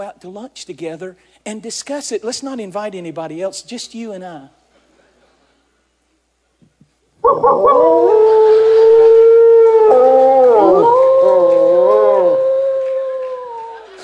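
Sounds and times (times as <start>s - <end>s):
speech: 0.0s - 4.6s, 7.4s - 8.1s
wolf howling: 7.2s - 14.0s.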